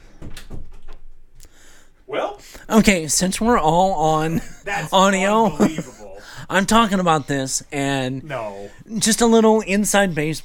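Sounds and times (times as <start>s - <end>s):
door creaking as it swings: 0.0s - 1.2s
speech: 2.1s - 10.4s
laughter: 4.2s - 6.9s.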